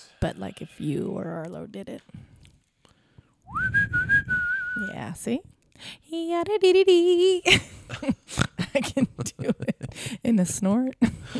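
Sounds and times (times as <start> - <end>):
speech: 0.2 - 2.3, 3.5 - 4.0, 4.8 - 11.3
person whistling a short upward-sliding note: 3.5 - 5.0
laughter: 7.5 - 10.1.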